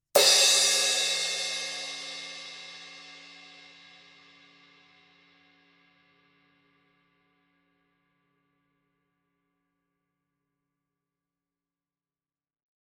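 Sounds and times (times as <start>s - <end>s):
Paiste Formula 602 Classic Sounds 16 inch cymbal heavy edge hit: 0.2s - 4.0s.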